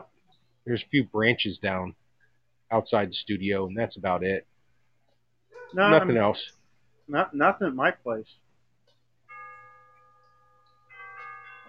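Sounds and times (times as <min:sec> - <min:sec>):
faint low hum: 0:00.0 - 0:11.6
speech: 0:00.6 - 0:02.0, 0:02.7 - 0:04.5, 0:05.7 - 0:08.4
chimes ringing in bright bell-like tones: 0:09.2 - 0:11.6.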